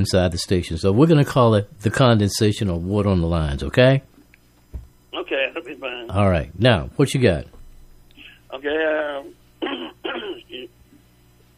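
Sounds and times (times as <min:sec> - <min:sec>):
speech: 0:00.0 - 0:04.1, 0:05.2 - 0:07.6, 0:08.5 - 0:09.8
person with throat congestion clearing throat over a telephone line: 0:09.6 - 0:10.7.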